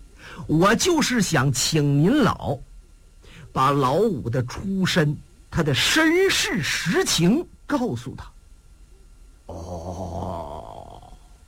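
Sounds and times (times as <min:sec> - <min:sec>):
speech: 0:00.4 - 0:02.7, 0:03.6 - 0:08.4
voice imitating a thick gurgling rattle of phlegm in the throat: 0:09.5 - 0:11.3.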